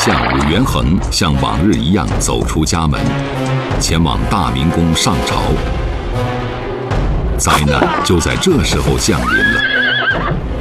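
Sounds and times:
speech: 0.0s - 6.4s, 7.4s - 10.5s
horses neighing at dawn: 7.6s - 8.4s, 9.1s - 10.4s.

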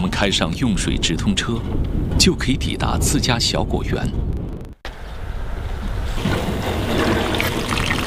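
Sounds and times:
speech: 0.1s - 4.3s
rush of Yellow River irrigation water in Hongsibu China: 4.9s - 8.0s.

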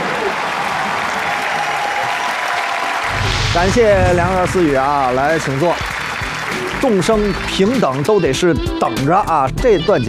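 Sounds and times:
large audience applauding performers on a stage: 0.0s - 8.0s
speech: 3.6s - 5.9s, 6.8s - 10.0s.

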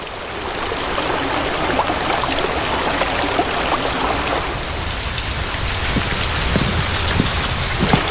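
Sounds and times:
water rushing through a covered drainage channel beneath bluestone slabs in a village: 0.0s - 8.0s.

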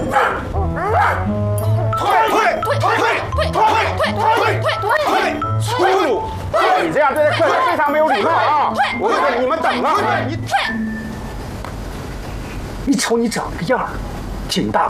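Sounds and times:
person imitating a barking dog: 0.1s - 1.3s, 2.1s - 10.8s
speech: 7.0s - 10.8s, 12.9s - 14.8s.

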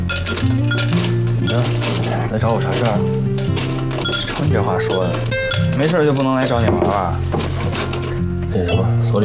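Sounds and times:
ice cubes clinking against a glass as a drink is mixed: 0.1s - 6.5s
speech: 1.6s - 3.3s, 4.4s - 7.9s, 8.5s - 9.2s.

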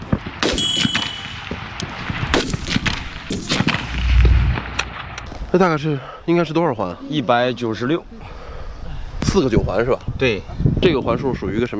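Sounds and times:
gunshots during rapid precision target shooting: 0.4s - 5.2s
low rumble: 3.0s - 5.7s
speech: 5.5s - 8.3s, 9.3s - 11.7s.

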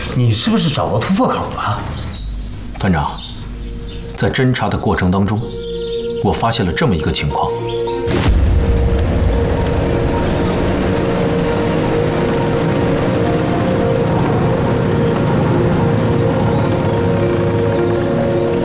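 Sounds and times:
speech: 0.1s - 2.0s, 2.8s - 3.3s, 4.2s - 5.6s, 6.2s - 8.3s
convoy of motorcycle engines of a special agent motorcycle squad roaring: 8.6s - 18.6s.

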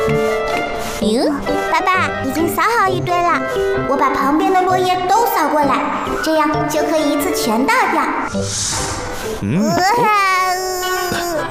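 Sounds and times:
speech: 1.0s - 10.5s
young child crying in a high-pitched wail: 9.6s - 11.5s.

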